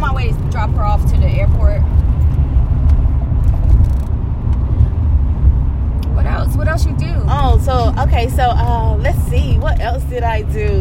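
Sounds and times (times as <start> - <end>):
car cabin road noise from tyres and engine while driving to the airport: 0.0 - 10.7
speech: 8.3 - 10.7.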